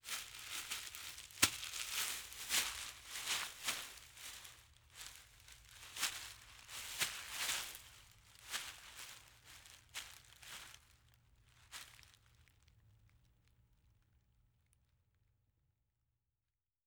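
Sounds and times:
grass hay: 0.0 - 11.0.

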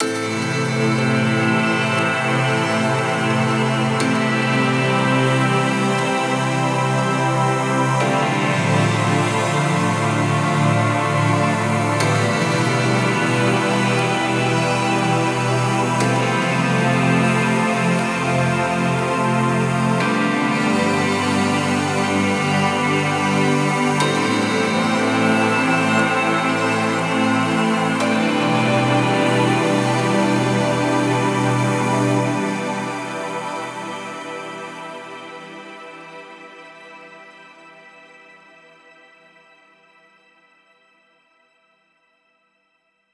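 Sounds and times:
synth pad in A minor: 0.0 - 40.0.

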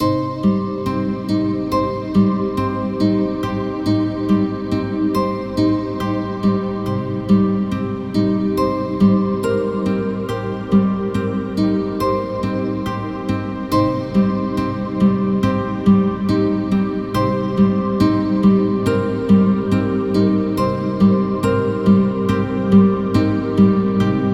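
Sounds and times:
acoustic guitar: 0.0 - 24.3.

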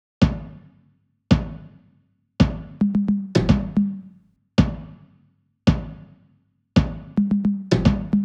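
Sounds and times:
experimental percussion drum loop at 110 BPM: 2.4 - 4.9, 6.8 - 8.2.

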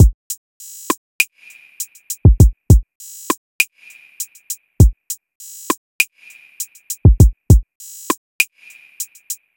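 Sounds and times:
drum loop: 0.0 - 1.0, 1.8 - 3.4, 4.8 - 6.1, 6.7 - 9.4.

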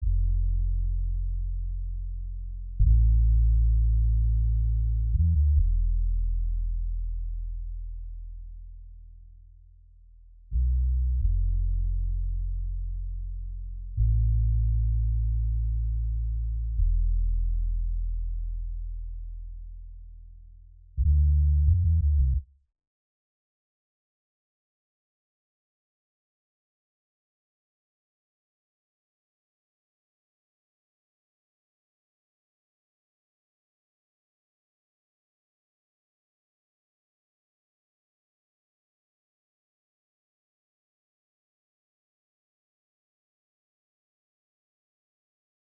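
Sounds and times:
bass melody in A minor: 0.0 - 9.6, 10.2 - 22.5.

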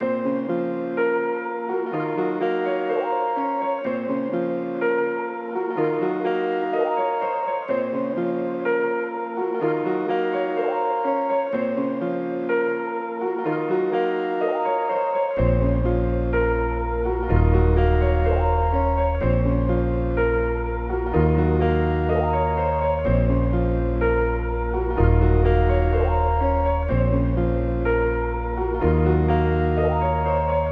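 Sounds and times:
125 BPM A sharp minor trap melody: 0.0 - 30.7.

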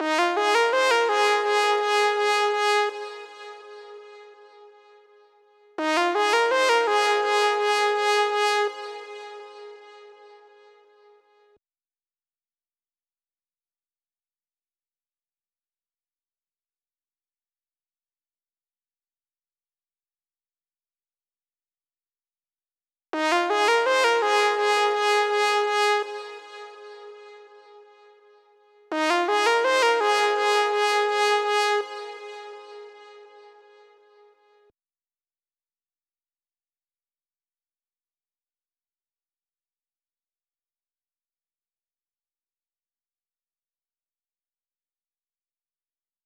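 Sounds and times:
lead melody loop in G sharp major: 0.0 - 5.0, 5.8 - 10.6, 23.2 - 28.2, 28.9 - 34.0.

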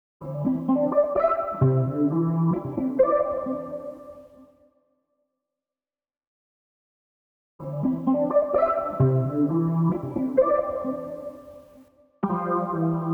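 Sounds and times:
guitar lead melody in A minor at 130 BPM: 0.4 - 4.2, 7.7 - 11.5, 12.2 - 13.1.

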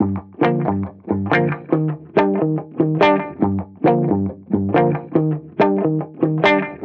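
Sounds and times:
reggae guitar loop in G minor: 0.0 - 6.8.

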